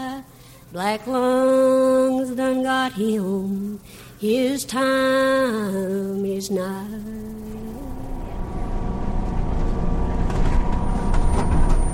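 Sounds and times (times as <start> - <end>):
faint mechanical hums and rattles inside a city bus: 0.0 - 11.9
speech: 0.7 - 7.3
low engine rumble inside a city bus: 6.9 - 11.9
road noise inside a city bus: 7.7 - 11.9.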